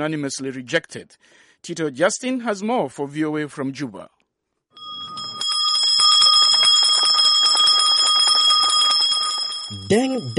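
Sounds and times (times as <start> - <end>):
speech: 0.0 - 4.2, 9.9 - 10.3
hand bell ringing to start exams: 4.8 - 10.3.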